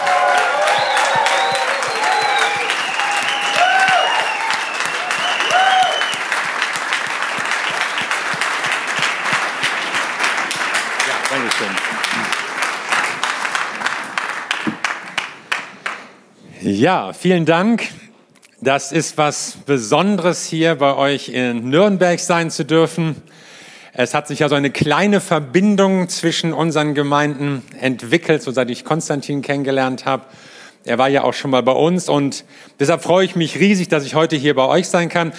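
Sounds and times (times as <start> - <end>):
audience cheers and whoops: 0.0 - 6.4
large audience applauding a speaker in Nuremberg: 0.0 - 16.0
speech: 16.7 - 18.0, 18.6 - 35.3.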